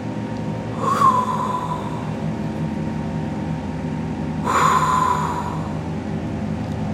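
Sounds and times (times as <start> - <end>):
steady low hum: 0.0 - 6.9
forceful breathing through a wide-open mouth: 0.7 - 2.3, 4.4 - 5.9.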